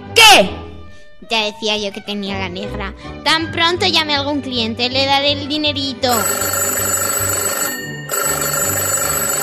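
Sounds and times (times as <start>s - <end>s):
speech: 0.3s - 0.6s, 1.3s - 7.1s
loud telephone bell ringing: 6.1s - 9.4s.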